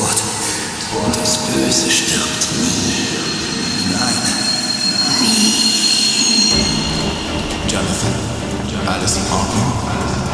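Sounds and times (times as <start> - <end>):
train rolling with broadband rumble: 0.0 - 10.3
speech: 1.3 - 3.1
high sustained train wheel squeal: 2.0 - 8.3.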